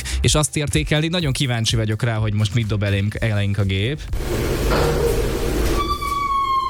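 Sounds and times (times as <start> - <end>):
speech: 0.2 - 5.1
door creaking open: 4.4 - 6.6.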